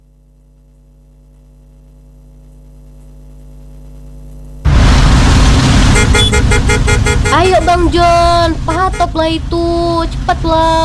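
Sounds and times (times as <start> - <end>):
loud dense road noise in a traffic jam: 4.7 - 10.8
low engine hum: 4.7 - 10.8
car horns honking in a traffic jam: 5.8 - 10.8
speech: 7.4 - 10.8.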